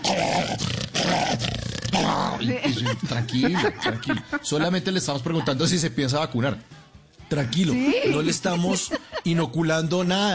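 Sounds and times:
person vocally imitating an angry dog growling behind a gate in a front yard: 0:00.0 - 0:02.6
laughter: 0:02.4 - 0:05.8, 0:07.5 - 0:09.6
speech: 0:02.4 - 0:10.3.

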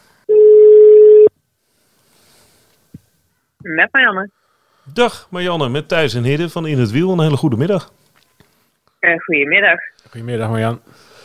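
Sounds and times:
telephone ringback tone while a call is placed: 0:00.3 - 0:01.3
speech: 0:03.7 - 0:08.0, 0:09.0 - 0:11.1.

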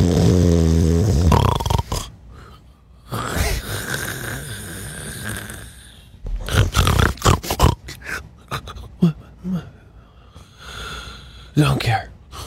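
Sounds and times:
person snoring loudly with rasping wheezy inhales and snorts: 0:00.0 - 0:02.1, 0:03.1 - 0:08.1.

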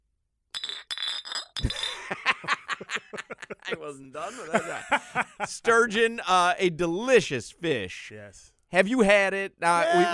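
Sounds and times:
glasses clinking in a toast: 0:00.6 - 0:02.1
laughter: 0:01.8 - 0:05.9
speech: 0:03.8 - 0:10.1.

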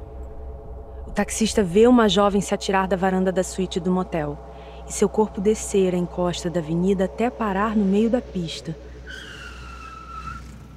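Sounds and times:
steady low car engine rumble: 0:00.0 - 0:10.7
speech: 0:01.1 - 0:09.3
car tires squealing under hard braking: 0:08.8 - 0:10.7.

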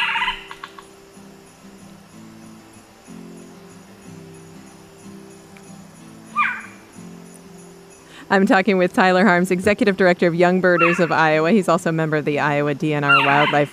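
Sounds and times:
screech owl trilling: 0:00.0 - 0:00.9, 0:06.3 - 0:06.9, 0:10.7 - 0:11.2, 0:13.1 - 0:13.7
speech: 0:08.3 - 0:13.7.

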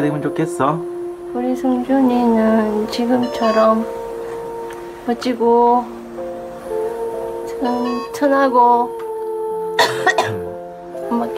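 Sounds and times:
speech: 0:00.0 - 0:04.0, 0:05.0 - 0:06.0, 0:07.6 - 0:09.0, 0:11.2 - 0:11.3
steady tonal hum: 0:00.0 - 0:11.3
harsh throaty coughs: 0:09.8 - 0:10.5.

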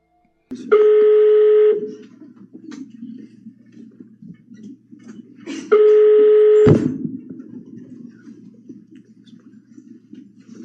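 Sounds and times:
speech: 0:00.5 - 0:01.0
ringback tone of a call placed on an intercepted telephone line: 0:00.6 - 0:02.0, 0:05.7 - 0:06.9.

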